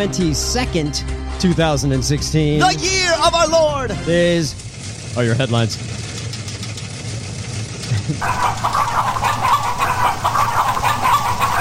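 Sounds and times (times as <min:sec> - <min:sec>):
speech: 0:00.0 - 0:04.6, 0:05.2 - 0:06.0, 0:08.1 - 0:08.4
low rumbling background: 0:00.0 - 0:08.5
flock of chickens clucking in a barnyard: 0:08.1 - 0:11.5.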